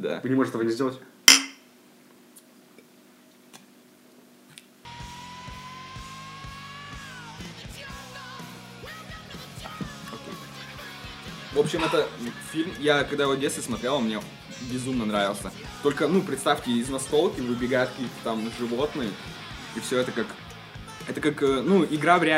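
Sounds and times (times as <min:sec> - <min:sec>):
speech: 0:00.0 - 0:01.2, 0:11.7 - 0:20.4, 0:21.1 - 0:22.3
glasses clinking in a toast: 0:01.3 - 0:01.6, 0:11.7 - 0:12.1
music: 0:04.8 - 0:22.3.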